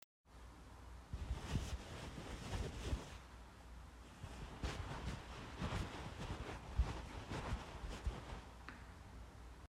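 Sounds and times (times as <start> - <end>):
fabric touch: 1.1 - 3.4, 4.0 - 8.6.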